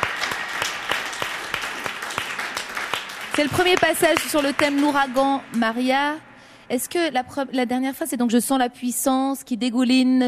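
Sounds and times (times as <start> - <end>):
audience applauding with many hands clapping: 0.0 - 6.2
speech: 3.4 - 10.2.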